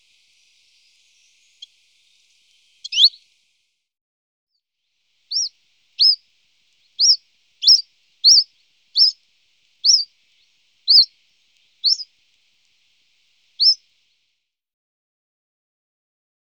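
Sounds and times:
common chiffchaff Phylloscopus collybita song of high hooked notes: 0:00.0 - 0:03.3, 0:05.3 - 0:06.2, 0:06.8 - 0:12.1, 0:13.6 - 0:13.8.

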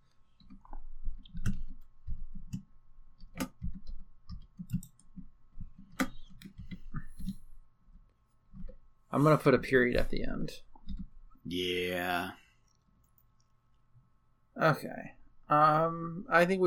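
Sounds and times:
slow uneven one-handed keyboard typing: 0:00.3 - 0:08.8, 0:10.7 - 0:11.1
speech: 0:09.2 - 0:10.7, 0:11.5 - 0:12.4, 0:14.6 - 0:16.6.

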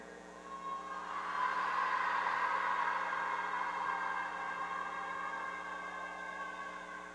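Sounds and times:
crowd of women in an audience wailing together: 0:00.4 - 0:07.1.

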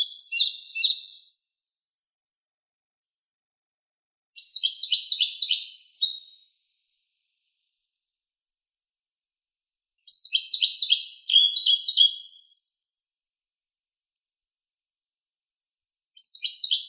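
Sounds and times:
Ficedula hypoleuca European pied flycatcher singing short phrases: 0:00.0 - 0:01.3, 0:04.4 - 0:06.4, 0:10.1 - 0:12.6, 0:16.2 - 0:16.8.

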